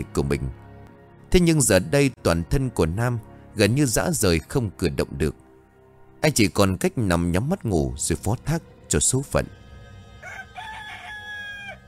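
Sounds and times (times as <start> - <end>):
speech: 0.0 - 0.6, 1.3 - 5.4, 6.2 - 9.6
rooster crowing at dawn: 10.1 - 11.8.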